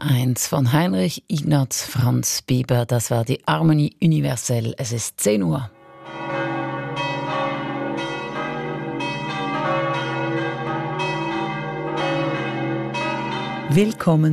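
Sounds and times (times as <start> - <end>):
speech: 0.0 - 5.8, 13.7 - 14.3
Roman Catholic church bells pealing in Sachseln, Obwalden, Switzerland: 5.8 - 14.3.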